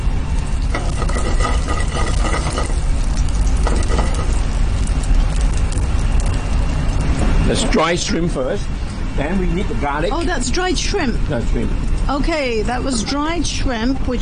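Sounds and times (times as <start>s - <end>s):
chopped ginger, chili and red onions frying in hot oil: 0.0s - 14.2s
stirring scrapes: 0.7s - 4.5s
speech: 7.6s - 14.2s.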